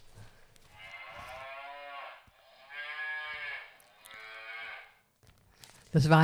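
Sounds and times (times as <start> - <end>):
cows mooing: 0.0 - 5.0
speech: 5.9 - 6.2.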